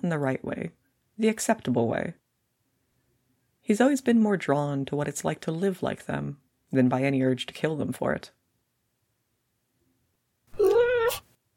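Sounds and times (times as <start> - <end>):
speech: 0.0 - 2.2, 3.7 - 8.4
ocelot meowing: 10.5 - 11.3.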